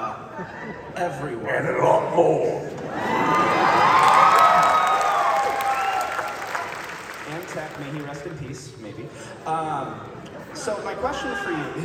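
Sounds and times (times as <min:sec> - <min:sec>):
laughter: 0:00.0 - 0:01.4
speech: 0:00.0 - 0:03.6, 0:07.6 - 0:11.8
large crowd screaming and cheering: 0:02.9 - 0:07.0
applause: 0:03.2 - 0:08.6.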